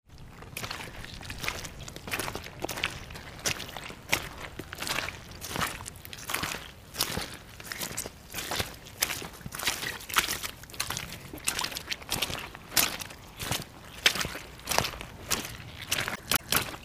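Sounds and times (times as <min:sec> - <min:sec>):
wellington boots squelching in mud: 0:00.1 - 0:16.8.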